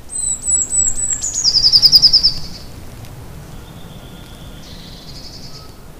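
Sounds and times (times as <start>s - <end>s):
Eurasian blue tit singing: 0.1s - 2.7s, 3.5s - 5.9s.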